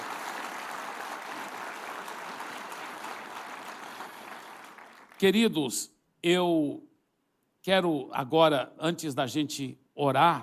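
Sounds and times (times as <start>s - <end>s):
large audience clapping: 0.0s - 5.4s
speech: 5.2s - 6.9s, 7.6s - 10.4s.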